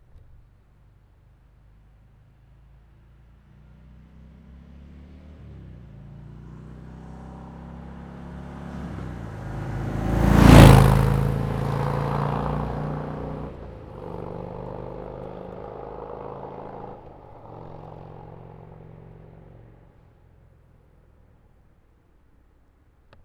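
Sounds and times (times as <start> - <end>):
Fat Bob 107 motorcycle passing by: 3.6 - 20.3.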